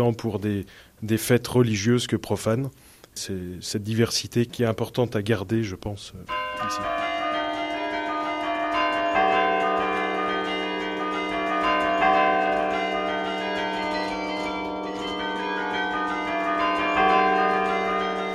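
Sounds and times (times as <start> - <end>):
speech: 0.0 - 7.1
carillon bells played by striking with the fist: 6.3 - 18.3.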